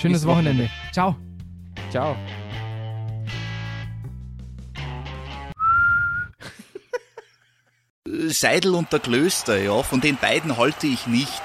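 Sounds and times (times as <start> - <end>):
speech: 0.0 - 1.2, 1.9 - 2.4, 8.3 - 11.4
loud shrill referee's whistle blast: 5.6 - 6.3
laughter: 6.4 - 7.8.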